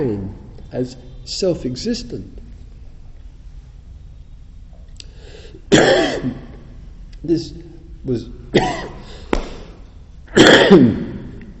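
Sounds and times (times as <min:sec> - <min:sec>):
speech: 0:00.0 - 0:02.4, 0:05.7 - 0:06.4, 0:07.2 - 0:09.0, 0:10.4 - 0:11.1
person coughing: 0:05.7 - 0:06.4, 0:08.6 - 0:09.1, 0:10.3 - 0:11.2.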